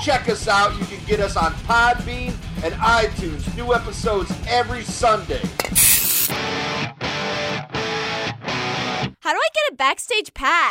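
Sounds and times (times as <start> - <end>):
speech: 0.0 - 6.6, 9.3 - 10.6
hairspray hissing from an aerosol can: 5.6 - 6.4
heavy distorted guitar music: 6.3 - 9.2.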